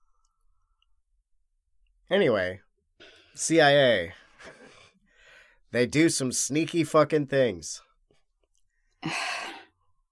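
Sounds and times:
speech: 2.1s - 4.2s, 5.7s - 7.8s, 9.0s - 9.5s
surprised gasp: 9.0s - 9.8s.

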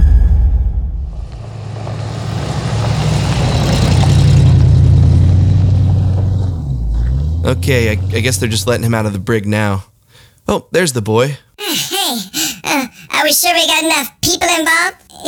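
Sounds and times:
car engine revving and accelerating: 1.0s - 9.8s
speech: 7.5s - 11.9s, 13.2s - 15.2s
laughter: 11.6s - 13.0s.

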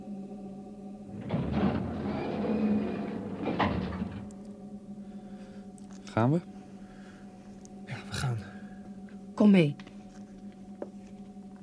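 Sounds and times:
steady low electrical hum: 0.0s - 11.6s
heavy airlock door sliding open: 1.1s - 4.7s
speech: 6.2s - 6.6s, 9.4s - 9.8s.

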